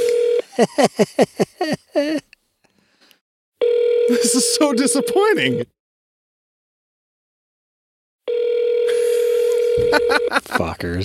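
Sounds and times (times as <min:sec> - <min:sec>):
electronic ringing tone of an unanswered phone call: 0:00.0 - 0:00.5, 0:03.6 - 0:05.7, 0:08.3 - 0:10.4
laughter: 0:00.4 - 0:02.3, 0:08.9 - 0:10.9
speech: 0:00.6 - 0:02.3, 0:04.3 - 0:05.8, 0:10.8 - 0:11.0.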